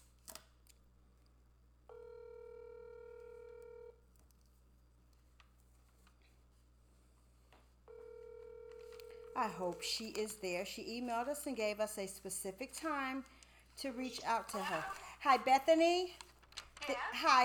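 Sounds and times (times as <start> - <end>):
low hum: 0.0 - 17.4
telephone line click: 8.2 - 9.4
speech: 9.4 - 16.2, 16.8 - 17.4.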